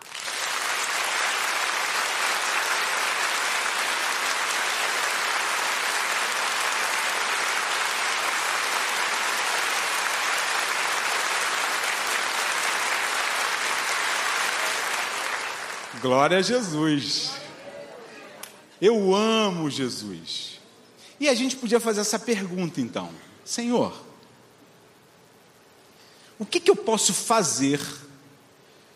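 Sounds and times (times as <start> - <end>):
large crowd clapping hands: 0.0 - 17.3
speech: 16.0 - 17.4, 18.8 - 20.6, 21.2 - 24.1, 26.4 - 28.1.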